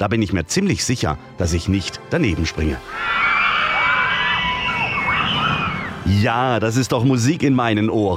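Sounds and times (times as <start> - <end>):
speech: 0.0 - 3.3, 6.1 - 8.1
roller coaster riders screaming together: 2.8 - 6.3.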